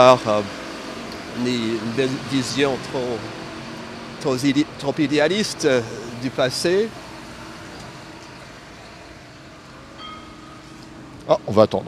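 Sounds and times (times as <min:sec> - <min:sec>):
speech: 0:00.0 - 0:00.6, 0:01.4 - 0:03.4, 0:04.2 - 0:07.0, 0:11.5 - 0:11.8
brief high metallic squeal: 0:00.0 - 0:11.8
city street traffic: 0:00.0 - 0:11.8
tram rolling by on a city street: 0:00.0 - 0:11.8.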